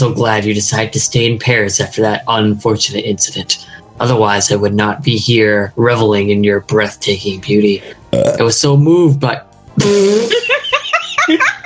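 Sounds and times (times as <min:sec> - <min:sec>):
speech: 0:00.0 - 0:10.6, 0:11.3 - 0:11.6
low croaking burp: 0:08.1 - 0:08.5
laughter: 0:10.3 - 0:11.6.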